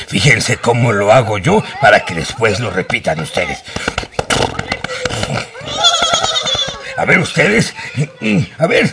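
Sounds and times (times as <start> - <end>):
speech: 0.1 - 4.0, 7.0 - 8.9
laughter: 4.5 - 8.9
person imitating a horse's whinny with the voice: 5.2 - 6.8.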